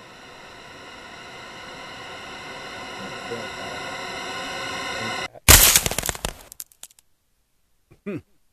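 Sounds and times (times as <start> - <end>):
tense panic sweep noisy tonal riser: 0.0 - 5.4
harsh crackling burst: 0.0 - 7.0.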